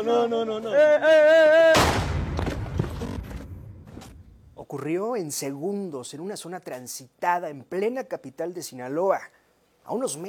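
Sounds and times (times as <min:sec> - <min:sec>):
speech: 0:00.0 - 0:02.0, 0:04.7 - 0:10.2
handgun gunshot in a street shooting in Culiacán, Sinaloa: 0:01.8 - 0:02.6.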